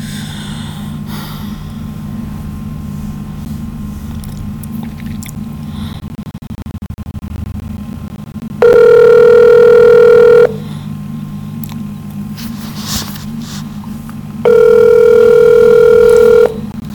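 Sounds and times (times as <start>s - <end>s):
low hum: 0.0s - 16.9s
telephone ringback tone of a call to a police department: 8.6s - 10.6s, 14.4s - 16.6s.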